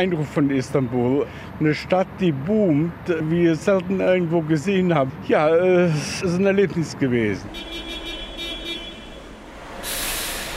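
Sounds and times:
speech: 0.0 - 7.9
traffic and bus engine rumble: 0.0 - 10.5
bus air brake hiss: 9.6 - 10.5.

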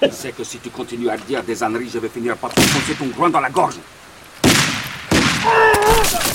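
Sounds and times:
speech: 0.0 - 4.0, 5.4 - 6.3
gunshots in a war drama: 2.6 - 3.1, 4.4 - 6.3.

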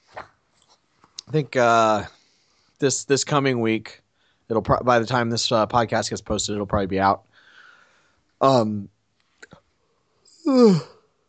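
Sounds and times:
speech: 1.3 - 2.2, 2.8 - 7.3, 8.4 - 9.6, 10.4 - 11.0
person yawning: 10.4 - 11.0.

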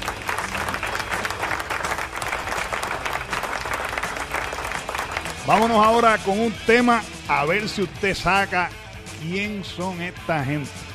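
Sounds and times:
crowd applauding: 0.0 - 6.3
speech: 5.5 - 10.8.

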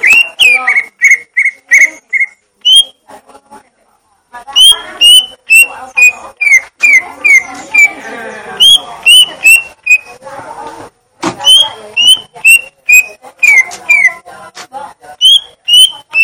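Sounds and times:
Greater green leafbird song of clear whistled notes: 0.0 - 3.0, 4.6 - 8.0, 11.4 - 14.2, 15.2 - 16.2.

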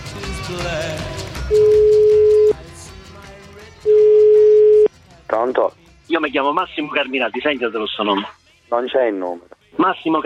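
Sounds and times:
speech: 0.5 - 1.7, 5.4 - 10.2
telephone line tones while placing a call: 1.5 - 2.6, 3.9 - 4.9.

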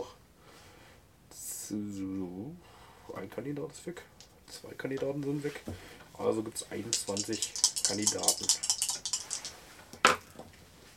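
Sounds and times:
speech: 1.7 - 8.7
die being rolled during a board game: 6.8 - 10.2.

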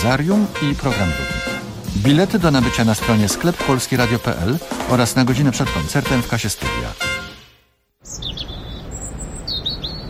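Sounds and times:
speech: 0.0 - 1.3, 2.0 - 7.1
birds chirping: 8.0 - 10.0.

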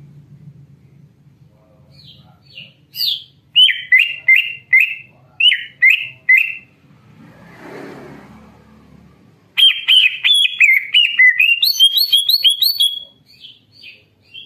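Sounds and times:
greater green leafbird whistled song: 2.0 - 6.6, 9.6 - 14.4
soft rushing noise: 6.8 - 9.5.

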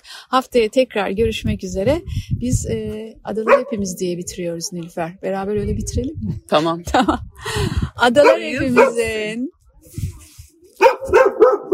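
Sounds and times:
speech: 0.3 - 10.2, 10.8 - 11.7
dog barking: 3.4 - 4.0, 8.2 - 9.1, 10.8 - 11.7
low voice: 8.1 - 9.4.

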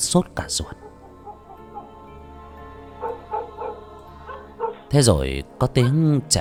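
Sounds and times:
speech: 0.0 - 0.9, 4.9 - 6.3
dogs barking in the distance near the head of a market: 0.4 - 5.2.

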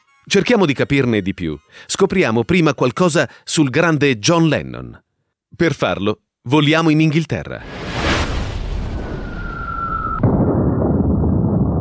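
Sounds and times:
constant noise: 0.0 - 8.0
speech: 0.2 - 7.8
deep rumble after a bomb explosion: 7.6 - 11.7
heavy bomb explosion during a German air raid on Liverpool: 7.6 - 11.7
falling bomb whistle during a German air raid on Liverpool: 8.1 - 10.5.

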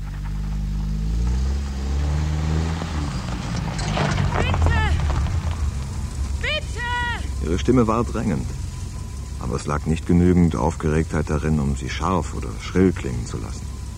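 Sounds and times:
car engine rumbling on a roadside above a bridge: 0.0 - 13.9
car high squealing chirps while braking and reversing: 3.0 - 13.9
speech: 7.6 - 8.6, 9.4 - 13.7.

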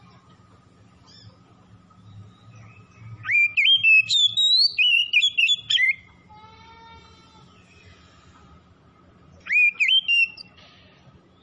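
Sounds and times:
low background hum: 0.0 - 11.4
Oriental magpie-robin singing in full song: 1.0 - 6.3, 9.3 - 10.6.

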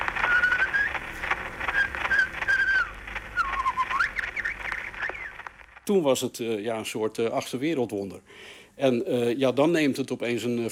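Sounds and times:
whistled birdsong on an 1889 phonograph nature recording: 0.0 - 5.5
heavy phonograph hiss and crackle: 0.0 - 10.6
speech: 5.9 - 10.6.

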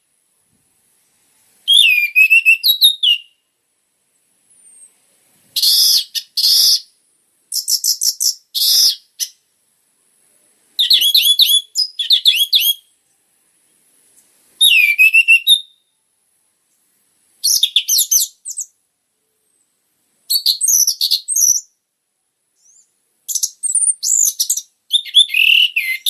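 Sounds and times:
orange-headed thrush song of high chirps and twittering: 1.6 - 3.6, 4.5 - 9.5, 10.8 - 16.0, 16.7 - 18.8, 19.4 - 21.8, 22.5 - 26.0.

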